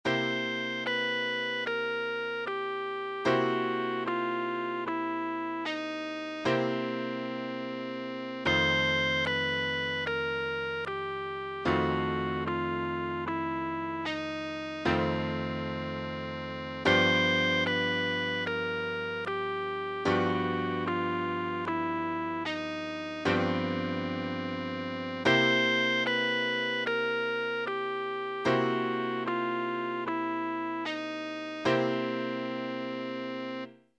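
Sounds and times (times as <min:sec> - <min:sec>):
blues scale: 0:00.1 - 0:33.7.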